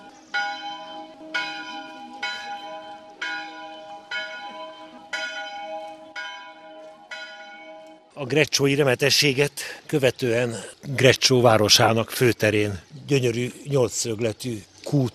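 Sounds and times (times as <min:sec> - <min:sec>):
church bell in Grecsó Hungary tolling at noon: 0:00.0 - 0:08.1
speech: 0:08.2 - 0:15.1.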